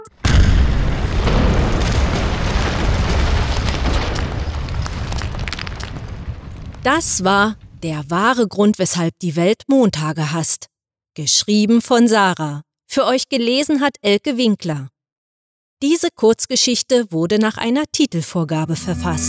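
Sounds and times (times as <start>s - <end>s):
huge explosion booming into a heavy roaring rumble: 0.2s - 6.8s
speech: 6.8s - 14.9s, 15.8s - 19.2s
rhythmic electronic tones: 18.6s - 19.2s.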